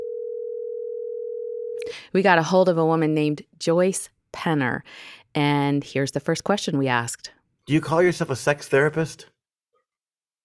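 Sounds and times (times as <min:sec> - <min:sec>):
telephone dial tone at the start of a phone call: 0:00.0 - 0:01.8
speech: 0:01.8 - 0:09.3.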